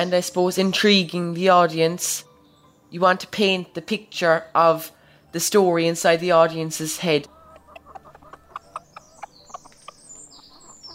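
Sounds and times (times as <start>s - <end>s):
speech: 0.0s - 2.3s, 2.9s - 7.3s
several hens clucking: 6.8s - 10.9s
brief chirps and higher bird calls: 7.3s - 10.9s.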